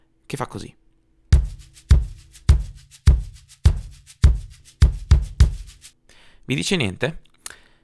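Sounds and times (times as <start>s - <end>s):
speech: 0.3s - 0.8s, 6.5s - 7.2s
bass drum thumps: 1.4s - 5.9s.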